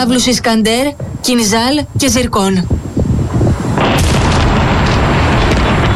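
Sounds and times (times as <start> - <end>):
speech: 0.0 - 2.7
explosion boom rolling into a heavy rumble: 3.3 - 5.9.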